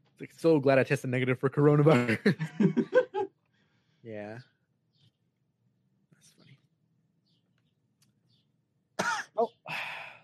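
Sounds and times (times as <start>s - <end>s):
speech: 0.2s - 3.0s, 4.1s - 4.5s, 9.4s - 9.8s
laughter: 1.8s - 3.3s
harsh coughing into a microphone: 9.0s - 9.5s.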